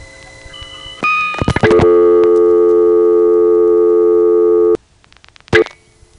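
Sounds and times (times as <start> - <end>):
payphone clicks and brief tone bursts: 0.5 - 3.2
telephone dial tone on old three-slot payphone: 1.3 - 4.8.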